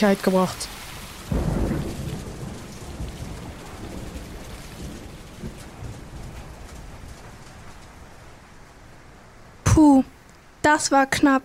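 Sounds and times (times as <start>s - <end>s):
speech: 0.0s - 1.4s, 10.8s - 11.4s
water rushing over a market square: 0.0s - 5.4s
deep rumble of thunder over a market square: 0.0s - 9.7s
steady driving rain pouring over a market square: 0.0s - 11.4s.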